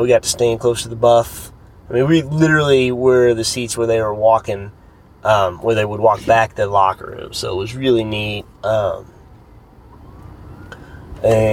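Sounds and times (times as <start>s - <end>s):
speech: 0.0s - 9.2s, 11.2s - 11.5s
steady low rumble of traffic and city noise: 0.0s - 11.5s
faint emergency siren wailing: 7.0s - 11.5s.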